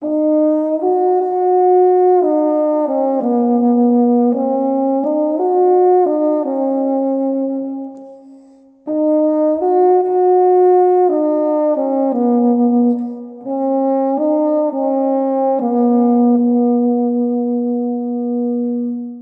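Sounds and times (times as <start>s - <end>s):
baritone horn: 0.0s - 19.2s.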